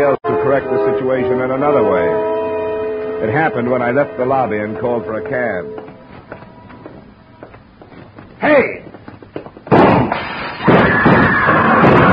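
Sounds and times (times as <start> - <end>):
speech: 0.0 - 2.4, 3.2 - 5.9, 8.4 - 8.9
pistol shots fired from a car: 9.7 - 12.0.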